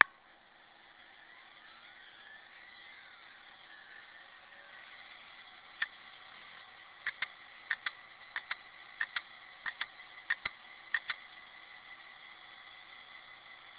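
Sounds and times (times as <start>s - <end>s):
Maxtor 53073H6 hardware: 4.7s - 13.7s.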